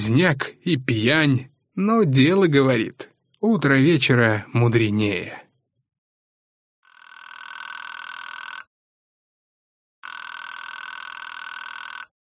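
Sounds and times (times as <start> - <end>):
speech: 0.0 - 5.4
telephone ringing with bright trilling rings: 6.8 - 8.7, 10.0 - 12.2.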